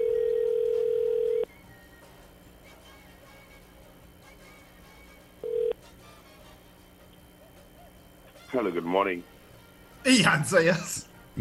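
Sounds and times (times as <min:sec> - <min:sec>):
electronic telephone tone during an outgoing phone call: 0:00.0 - 0:01.5, 0:05.4 - 0:05.8
speech: 0:08.6 - 0:09.3, 0:10.0 - 0:11.3.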